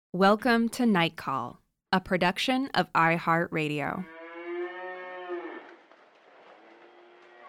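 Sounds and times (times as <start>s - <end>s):
speech: 0.1s - 4.2s
cow mooing at a cattle farm: 4.0s - 5.8s, 6.4s - 7.4s.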